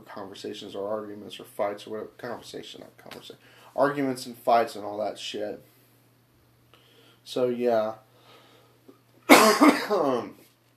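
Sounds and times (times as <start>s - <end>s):
speech: 0.2s - 5.7s, 7.2s - 8.0s, 9.4s - 10.4s
harsh coughing fit: 9.3s - 10.2s.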